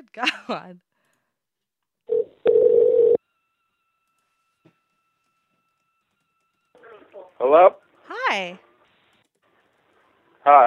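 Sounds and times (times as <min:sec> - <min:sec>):
speech: 0:00.2 - 0:00.9, 0:07.4 - 0:08.6, 0:10.4 - 0:10.6
longer steady telephone ringing tone: 0:02.1 - 0:03.3.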